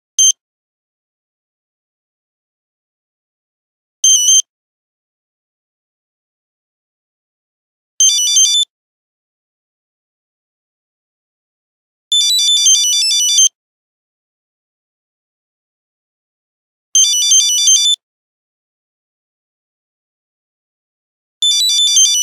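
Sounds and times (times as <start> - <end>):
Nokia 8310 phone buzzer: 4.0 - 4.5, 8.0 - 8.7, 12.1 - 13.6, 17.0 - 18.0, 21.4 - 22.2.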